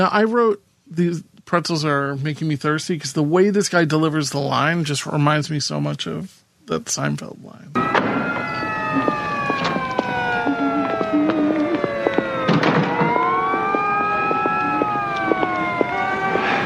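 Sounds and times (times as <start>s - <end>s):
speech: 0.0s - 9.8s
several sirens wailing: 7.8s - 16.6s
sharp clicks and knocks: 10.8s - 16.5s.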